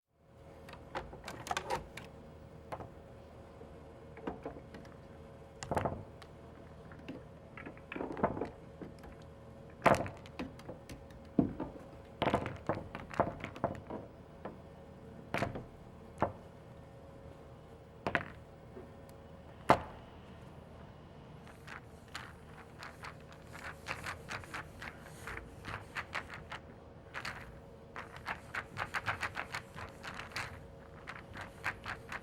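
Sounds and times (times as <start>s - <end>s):
pool table balls rolling: 0.4s - 3.4s, 4.0s - 32.2s.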